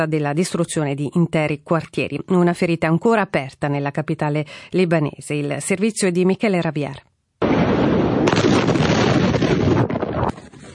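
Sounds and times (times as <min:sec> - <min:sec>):
speech: 0:00.0 - 0:07.1
massive explosion of ammonium nitrate in a port warehouse: 0:07.4 - 0:10.2.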